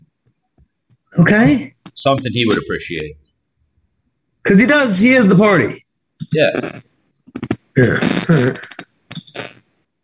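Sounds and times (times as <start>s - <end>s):
speech: 1.1s - 3.2s, 4.4s - 6.9s, 7.8s - 8.7s
rough voiced grunt or burp: 7.8s - 8.9s
computer mouse or keyboard clicks while answering emails: 9.1s - 9.4s.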